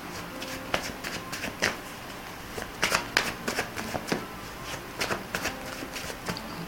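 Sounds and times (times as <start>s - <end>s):
deck of tarot cards being shuffled during a reading: 0.1s - 1.8s, 2.5s - 6.6s.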